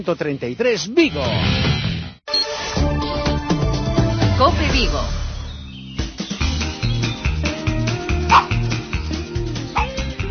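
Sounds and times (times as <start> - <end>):
speech: 0.0 - 1.8, 4.4 - 5.2
upbeat radio theme music with steady bass rhythm: 1.1 - 10.2
dog's short barks and yips mixed into the tune: 8.3 - 8.6, 9.7 - 10.0.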